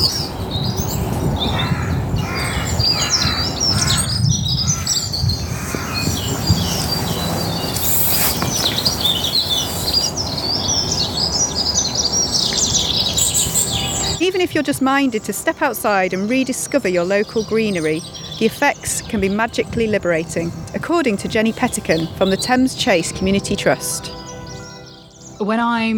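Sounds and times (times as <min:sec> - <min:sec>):
birds chirping and tweeting in a forest: 0:00.0 - 0:25.9
harsh caw-like bird calls in a forest: 0:01.4 - 0:06.7
speech: 0:14.5 - 0:24.2, 0:25.4 - 0:25.9.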